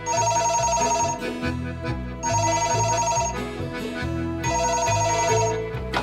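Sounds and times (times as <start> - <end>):
telephone ringing with bright electronic melody: 0.0 - 1.4, 2.2 - 3.6, 4.4 - 5.9.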